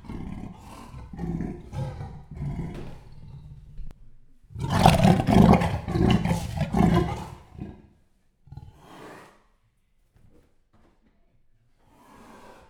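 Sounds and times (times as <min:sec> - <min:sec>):
captive male leopard giving rough rasping roars in a zoo: 0:00.0 - 0:03.9, 0:04.6 - 0:07.9.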